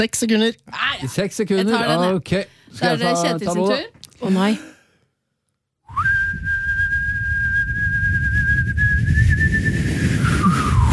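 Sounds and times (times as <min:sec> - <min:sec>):
speech: 0:00.0 - 0:04.7
person whistling a long steady note: 0:05.9 - 0:10.9.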